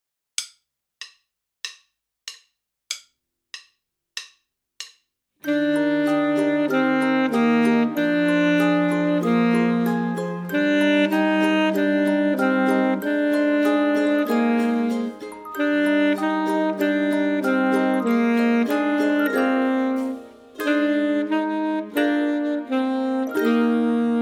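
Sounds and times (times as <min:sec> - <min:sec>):
full saxophone lullaby: 0:05.4 - 0:24.2.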